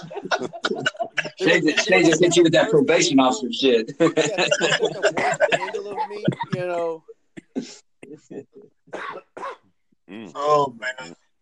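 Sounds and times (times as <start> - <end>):
laughter: 0.0 - 7.0
speech: 0.0 - 7.8, 10.2 - 11.2
man clearing throat: 0.3 - 1.5, 4.9 - 6.7, 7.4 - 11.2
man coughing: 0.3 - 2.7, 4.0 - 6.8, 7.4 - 11.2.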